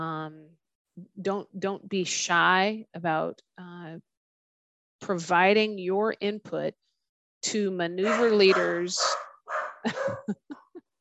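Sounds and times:
speech: 0:01.0 - 0:04.1, 0:05.0 - 0:06.8, 0:07.4 - 0:09.2, 0:09.8 - 0:10.6
dogs barking sharply: 0:08.0 - 0:10.3.

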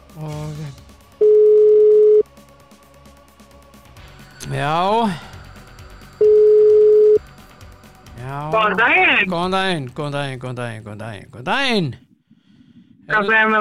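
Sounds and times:
speech: 0:00.2 - 0:00.9, 0:04.5 - 0:05.3, 0:08.3 - 0:12.0, 0:13.1 - 0:13.5
telephone line beeps on a call-in line: 0:01.2 - 0:02.2, 0:06.2 - 0:07.2.

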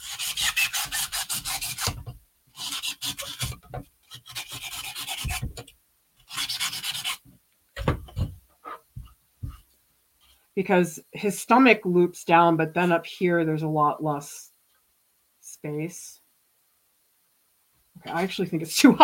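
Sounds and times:
styrofoam being shaved on a wire armature for a dog sculpture: 0:00.0 - 0:05.6, 0:06.3 - 0:07.2
speech: 0:10.6 - 0:14.4, 0:15.6 - 0:16.1, 0:18.1 - 0:19.0.

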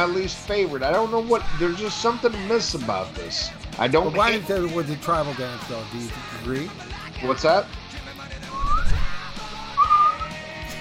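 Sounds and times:
speech: 0:00.0 - 0:07.8
person whistling gliding phrases: 0:08.5 - 0:10.4.

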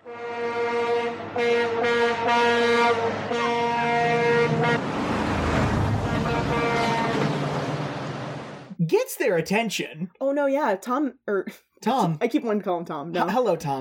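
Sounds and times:
car horns honking in busy street traffic: 0:00.0 - 0:08.5
low rumble of passing vehicles: 0:01.1 - 0:08.7
speech: 0:01.4 - 0:03.6, 0:08.9 - 0:13.7.

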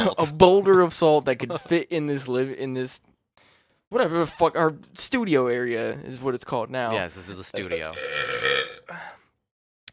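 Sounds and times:
speech: 0:00.0 - 0:03.1, 0:03.9 - 0:09.2
loud burp: 0:07.7 - 0:09.2.

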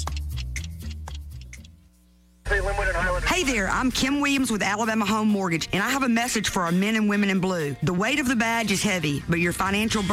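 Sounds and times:
grandfather clock ticking: 0:00.0 - 0:01.8
speech: 0:02.6 - 0:10.1.

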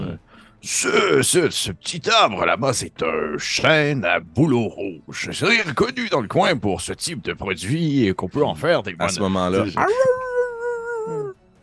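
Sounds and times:
speech: 0:00.6 - 0:10.3
dog howling: 0:09.8 - 0:11.4.

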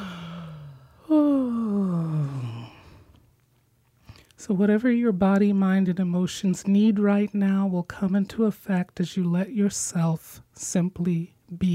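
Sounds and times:
person yawning with deep inhale: 0:00.0 - 0:03.1
speech: 0:04.4 - 0:11.7.

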